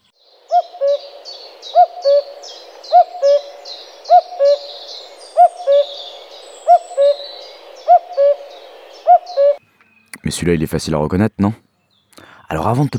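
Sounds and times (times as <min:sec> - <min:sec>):
common cuckoo calling its two-note cuck-oo: 0:00.0 - 0:10.3
small birds chirping faintly: 0:00.0 - 0:12.9
speech: 0:10.4 - 0:11.7, 0:12.6 - 0:12.9.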